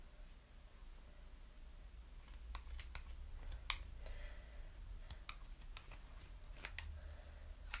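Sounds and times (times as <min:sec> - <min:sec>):
low steady hum: 0:00.0 - 0:07.7
scissors cutting craft material: 0:02.2 - 0:03.9, 0:05.1 - 0:06.9.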